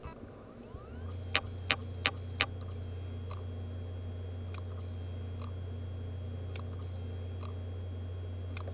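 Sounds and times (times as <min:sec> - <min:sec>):
bad laptop noise: 0:00.0 - 0:07.6.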